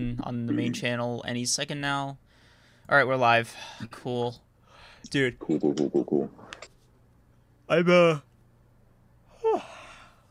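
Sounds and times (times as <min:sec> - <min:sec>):
speech: 0:00.0 - 0:02.3, 0:02.9 - 0:04.4, 0:05.0 - 0:06.4, 0:07.7 - 0:08.3
person yawning during a live stream: 0:09.3 - 0:10.2.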